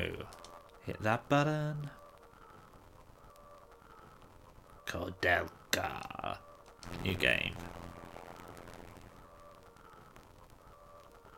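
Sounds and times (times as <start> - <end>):
speech: 0.0 - 2.0, 4.9 - 7.9
eerie hollow bird calls in a video game: 0.0 - 6.8, 9.1 - 11.3.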